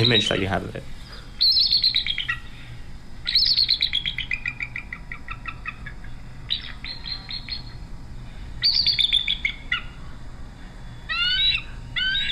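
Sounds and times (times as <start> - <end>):
speech: 0.0 - 1.0
seagull calling in high shrill squealing bursts: 0.0 - 7.8, 8.6 - 10.0, 11.1 - 12.2.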